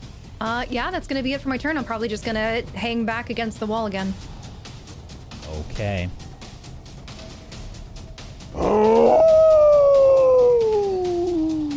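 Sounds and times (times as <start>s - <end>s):
speech: 0.4s - 4.3s, 5.6s - 6.2s
long canine-like howl: 8.6s - 11.7s.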